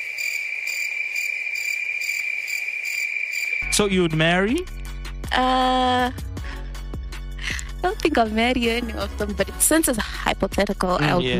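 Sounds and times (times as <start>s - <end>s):
crickets chirping in a high-pitched trill: 0.0s - 5.1s
speech: 3.6s - 6.2s, 7.8s - 11.3s.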